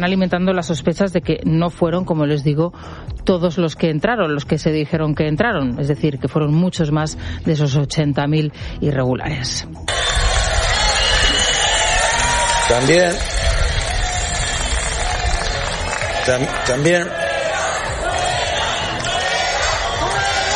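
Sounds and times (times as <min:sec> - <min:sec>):
speech: 0:00.0 - 0:10.0, 0:12.7 - 0:13.4, 0:16.2 - 0:17.2
large outdoor crowd booing and jeering a government minister: 0:09.9 - 0:20.5.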